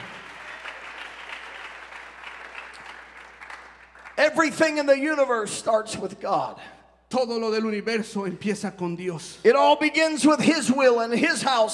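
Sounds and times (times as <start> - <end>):
church congregation clapping hands: 0.0 - 4.7
speech: 4.2 - 11.7.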